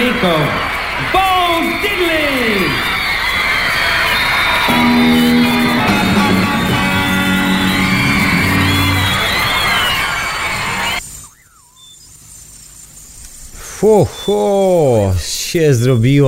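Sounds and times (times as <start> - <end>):
crowd of concert-goers squealing and screaming at a rock and roll concert: 0.0 - 11.0
speech: 0.2 - 3.0, 13.8 - 16.2
steady rock and roll band music: 4.7 - 11.0.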